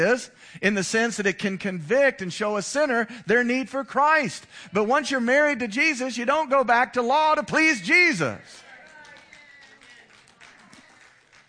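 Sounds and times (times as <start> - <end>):
speech: 0.0 - 8.6
scattered audience clapping: 8.5 - 11.4.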